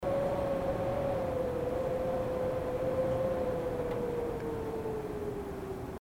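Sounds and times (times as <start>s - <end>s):
wind: 0.0s - 5.9s.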